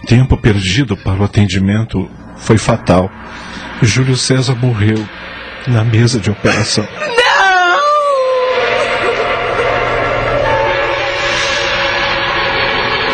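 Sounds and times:
noisy background: 0.0 - 13.1
speech: 0.1 - 7.2
grieving mother sobbing and calling out: 7.0 - 9.1
grieving mother wailing and screaming: 7.0 - 9.1.

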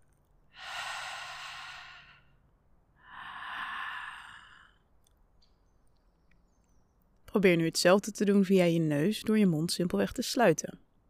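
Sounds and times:
whispered H sound breathing in and out: 0.6 - 2.4, 3.0 - 4.9
speech: 7.4 - 10.8.

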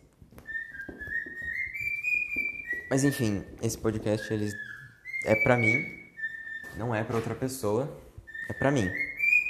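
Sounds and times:
pet bird whistling: 0.4 - 3.2, 4.0 - 6.9, 8.2 - 9.4
speech: 2.9 - 6.0, 6.8 - 9.1.

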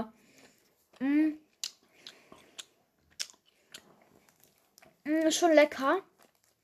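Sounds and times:
chewing a soft, very sticky, artificially pineapple-flavoured sweet: 0.3 - 6.6
speech: 5.1 - 6.1.

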